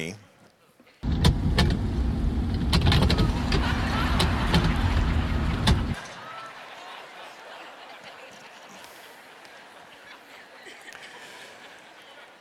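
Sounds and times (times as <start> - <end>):
speech: 0.0 - 0.3
car engine rumble: 1.0 - 6.0
car windshield wipers during a violent storm: 1.0 - 6.0
loud steady roar of rain in a violent storm: 1.0 - 6.0
irregular clicks and thumps: 2.5 - 6.0
laughter: 3.1 - 12.3.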